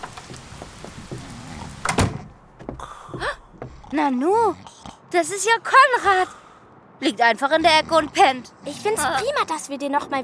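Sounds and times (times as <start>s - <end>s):
rain: 0.0s - 2.2s
old wooden mill door creaking and scraping open: 0.0s - 3.8s
speech: 3.9s - 6.4s, 7.0s - 10.2s.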